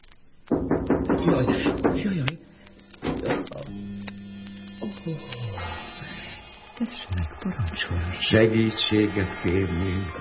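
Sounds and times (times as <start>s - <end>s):
knocking on a door: 0.5s - 2.1s
speech: 0.5s - 2.5s, 4.8s - 6.0s, 6.8s - 10.1s.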